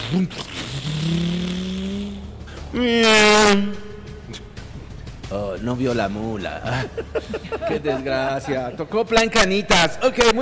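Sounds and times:
speech: 0.1 - 1.6, 2.7 - 4.4, 5.3 - 10.4
motorcycle engine revving and pulling away: 0.6 - 2.4
laughter: 6.5 - 9.1.

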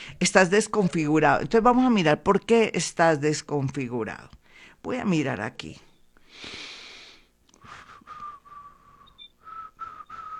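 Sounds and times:
speech: 0.2 - 6.7
person whistling a steady level tune: 7.6 - 10.3.

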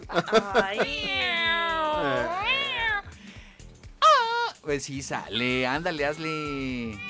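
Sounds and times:
laughter: 0.0 - 1.4
speech: 0.1 - 2.6, 4.7 - 7.0
person vocally imitating a yowling cat: 1.0 - 3.1, 4.0 - 4.6, 6.8 - 7.0.

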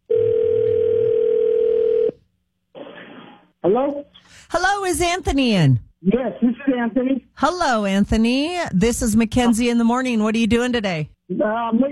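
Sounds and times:
telephone line tone as a call is placed: 0.0 - 2.2
speech: 3.7 - 11.8.

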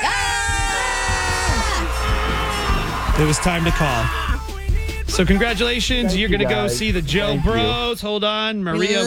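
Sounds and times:
several people screaming a word together: 0.0 - 4.5
speech: 3.2 - 4.4, 5.1 - 9.0.

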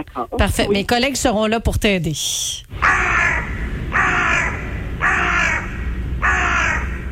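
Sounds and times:
speech: 0.0 - 3.2
low rumble: 0.0 - 7.1
crow cawing: 2.8 - 7.1.

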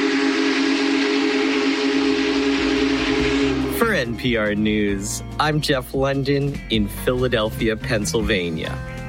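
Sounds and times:
Big Boy steam locomotive whistle blowing while passing through towns: 0.0 - 5.3
low rumble of the steam locomotive engine: 0.0 - 6.0
speech: 3.8 - 8.9.

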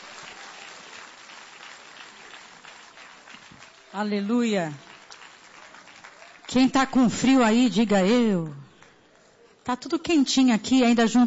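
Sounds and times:
church audience applauding: 0.0 - 7.2
speech: 3.9 - 4.9, 6.5 - 8.6, 9.6 - 11.2.

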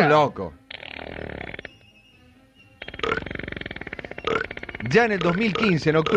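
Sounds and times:
speech: 0.0 - 1.4, 4.8 - 6.1
long loud croaking burps: 0.7 - 1.8, 2.8 - 6.1.

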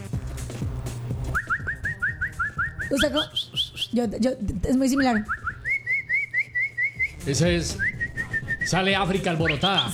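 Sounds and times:
person whistling to call a dog: 1.3 - 4.0, 5.2 - 8.8, 9.4 - 9.9
speech: 2.9 - 5.4, 7.2 - 7.9, 8.7 - 9.9.

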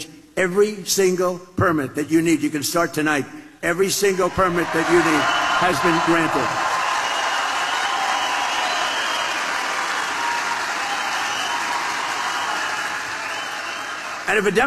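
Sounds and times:
speech: 0.4 - 6.7, 14.3 - 14.6
large crowd at an evening political rally cheering and applauding: 4.3 - 14.6.

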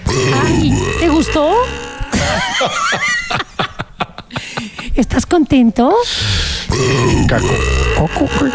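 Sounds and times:
loud drawn-out guttural burp: 0.0 - 2.4, 6.6 - 8.5
speech: 0.5 - 3.5, 5.1 - 8.5
laughter: 2.1 - 4.9.

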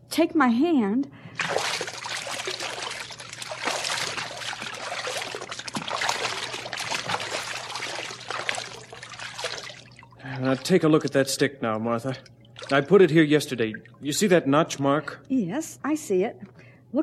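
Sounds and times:
speech: 0.2 - 1.6, 10.4 - 17.0
splashing and sloshing through shallow water about a foot deep: 1.3 - 11.2, 12.5 - 13.0.

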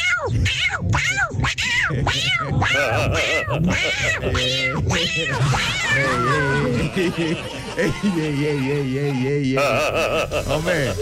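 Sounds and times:
person imitating a yowling beaten cat: 0.0 - 6.8
laughter: 1.9 - 4.6, 5.7 - 11.0
speech: 1.9 - 11.0.

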